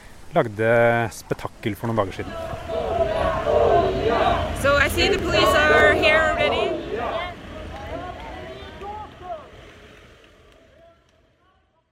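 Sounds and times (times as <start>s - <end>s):
speech: 0.3s - 2.7s, 4.7s - 6.6s
indistinct voices speaking: 2.0s - 9.7s
city traffic at a busy intersection: 2.2s - 10.6s.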